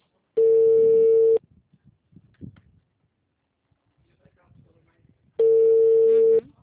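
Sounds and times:
long buzzy telephone tones of a call being dialed: 0:00.4 - 0:01.4, 0:05.4 - 0:06.5.

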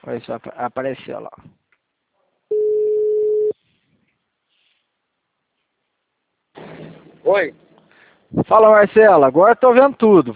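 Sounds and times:
speech: 0:00.0 - 0:01.6, 0:07.3 - 0:07.6, 0:08.3 - 0:10.3
telephone busy signal while placing a call: 0:02.5 - 0:03.5.

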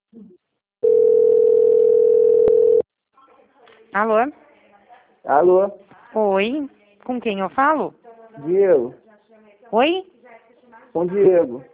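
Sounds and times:
telephone dial tone while placing a call: 0:00.8 - 0:02.8
speech: 0:03.9 - 0:04.4, 0:05.2 - 0:09.0, 0:09.7 - 0:10.1, 0:10.9 - 0:11.7.

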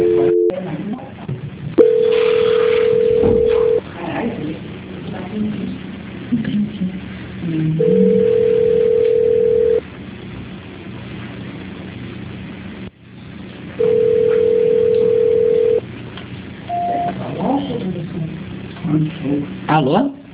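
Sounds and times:
telephone call transfer beeps on a narrow phone line: 0:00.0 - 0:00.6, 0:01.8 - 0:03.8, 0:13.8 - 0:15.8, 0:16.7 - 0:17.2
phone line noise: 0:00.0 - 0:20.3.

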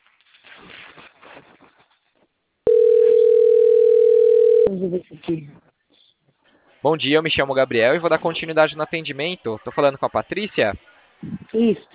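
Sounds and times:
telephone dial tone while placing a call: 0:02.7 - 0:04.7
speech: 0:04.8 - 0:05.7, 0:06.8 - 0:11.9.

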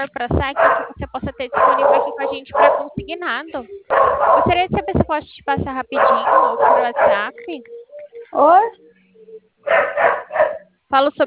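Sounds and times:
speech: 0:00.0 - 0:08.9, 0:09.7 - 0:11.2
dog barking: 0:00.5 - 0:03.0, 0:03.9 - 0:04.7, 0:06.0 - 0:07.4, 0:09.6 - 0:10.7.

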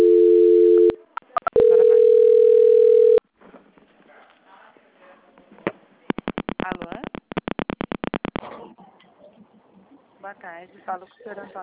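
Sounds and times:
electronic telephone tones as a call is transferred: 0:00.0 - 0:03.2
sharp clicks: 0:06.1 - 0:08.4
speech: 0:10.6 - 0:11.6.

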